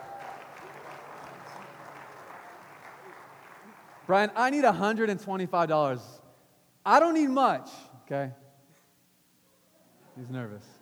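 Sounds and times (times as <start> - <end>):
audience applause: 0.0 - 4.4
speech: 4.1 - 6.2, 6.8 - 8.4, 10.2 - 10.8.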